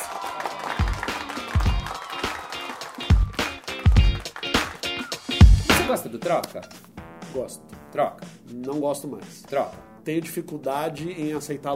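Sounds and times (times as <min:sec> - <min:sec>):
audience applause: 0:00.0 - 0:05.1
speech: 0:05.9 - 0:11.7.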